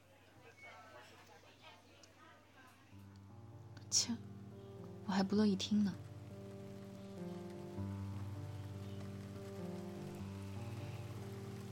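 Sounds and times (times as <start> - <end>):
sustained mellow musical tones: 3.2 - 11.7
steady rain: 3.3 - 11.7
speech: 3.9 - 4.3, 5.1 - 6.1.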